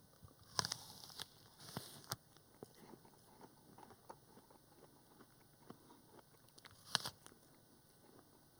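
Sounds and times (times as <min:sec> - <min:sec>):
person biting into a windfall apple in a studio: 0:00.5 - 0:02.2, 0:06.6 - 0:07.3
wet munching of an apple: 0:00.5 - 0:08.3.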